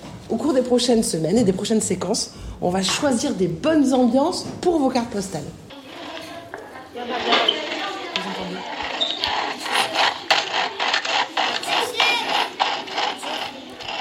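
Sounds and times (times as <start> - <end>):
speech: 0.3 - 5.6
faint indistinct voices: 5.7 - 14.0
vacuum cleaner wheels rolling across a hard floor: 5.7 - 14.0.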